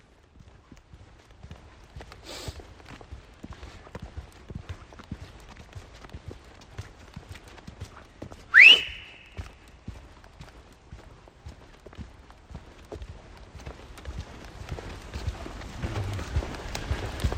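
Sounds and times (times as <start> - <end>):
brisk footsteps of people walking with a dog on a forest path: 0.0 - 17.3
short shrill chirp: 8.6 - 9.2.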